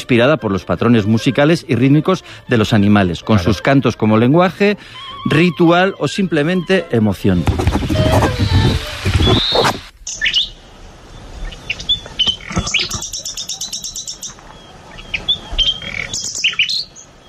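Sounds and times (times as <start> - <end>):
speech: 0.1 - 8.6
nightingale singing: 8.2 - 17.2.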